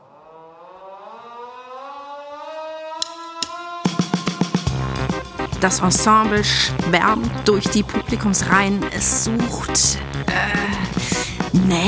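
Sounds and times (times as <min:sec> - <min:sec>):
hand-cranked siren wailing in a theatre auditorium: 0:00.0 - 0:04.7
quick run of rhythmic bangs: 0:00.8 - 0:11.8
speech: 0:05.6 - 0:11.8.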